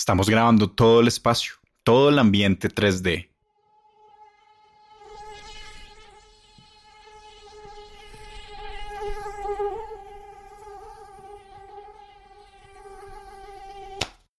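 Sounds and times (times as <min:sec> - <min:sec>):
speech: 0:00.0 - 0:03.3
mosquitoes buzzing: 0:03.4 - 0:14.0.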